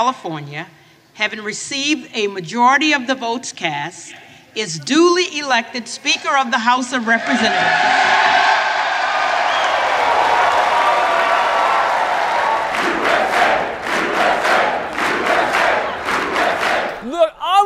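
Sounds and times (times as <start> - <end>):
speech: 0.0 - 8.5
large crowd applauding and cheering in the House of Representatives chamber: 7.5 - 17.0
crowd rhythmic unison clapping in the House of Representatives chamber: 9.2 - 17.1
person's voice: 17.0 - 17.6.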